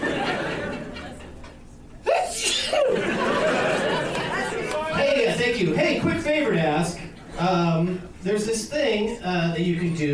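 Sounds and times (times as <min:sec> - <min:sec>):
laughter: 0:00.0 - 0:06.1
steady hiss: 0:00.0 - 0:10.1
sneeze: 0:02.1 - 0:02.9
speech: 0:05.6 - 0:10.1.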